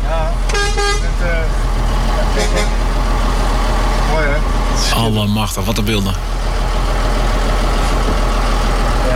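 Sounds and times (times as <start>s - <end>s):
18-wheel truck engine rumble driving slowly out of Emmen: 0.0s - 9.1s
18-wheel truck horn toots: 0.5s - 1.2s, 2.3s - 2.9s
speech: 5.0s - 6.7s.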